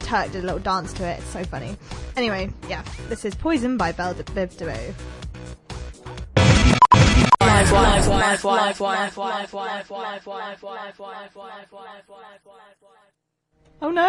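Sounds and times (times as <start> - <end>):
speech: 0.1 - 5.2, 7.8 - 13.1, 13.8 - 14.0
tiny music fragment looping in a fast stutter: 6.4 - 8.4
music playing: 6.4 - 8.6.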